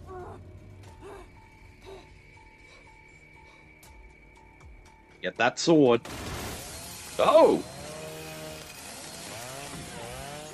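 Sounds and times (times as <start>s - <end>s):
speech: 5.2s - 6.3s, 7.2s - 7.7s
chainsaw cutting through wood: 6.1s - 10.5s.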